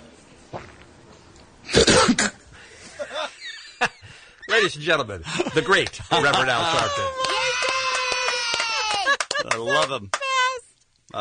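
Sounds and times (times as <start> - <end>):
man coughing: 1.7 - 2.4
laughter: 2.8 - 10.0
speech: 4.6 - 7.3, 9.6 - 10.2.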